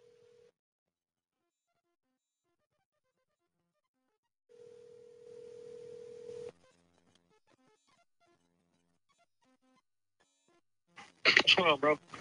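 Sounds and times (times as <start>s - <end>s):
phone ringback tone: 0.0s - 0.5s, 4.5s - 6.6s
speech: 11.6s - 12.1s.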